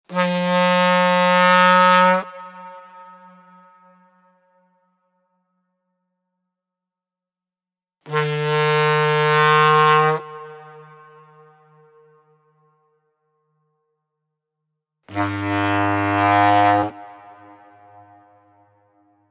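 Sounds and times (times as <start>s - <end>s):
deep foghorn or ship horn blasts: 0.1s - 4.8s, 8.0s - 13.0s, 15.1s - 19.2s.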